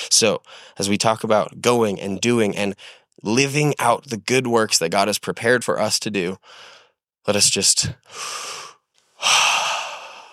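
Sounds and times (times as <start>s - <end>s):
speech: 0.1s - 9.6s
deep deliberate breath through the mouth: 8.0s - 10.3s.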